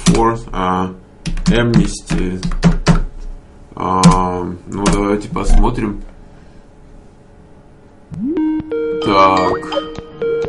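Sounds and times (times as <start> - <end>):
speech: 0.1 - 2.7, 3.8 - 6.1, 8.1 - 9.9
telephone ringtone for an incoming call: 8.3 - 10.4.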